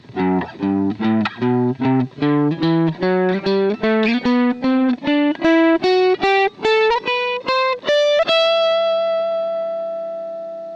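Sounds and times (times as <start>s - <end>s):
guitar playing a G major scale: 0.0s - 10.7s.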